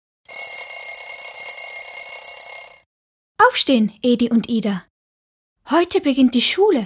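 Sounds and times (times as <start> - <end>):
alarm clock ringing in the early morning: 0.3 - 2.9
speech: 3.5 - 4.9, 5.7 - 6.8.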